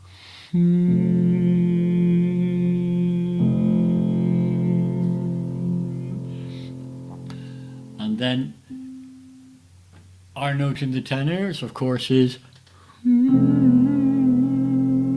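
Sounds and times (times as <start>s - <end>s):
single voice humming with air through the nose: 0.0s - 9.6s, 13.0s - 15.1s
speech: 0.5s - 1.1s, 8.3s - 8.6s, 10.6s - 12.5s.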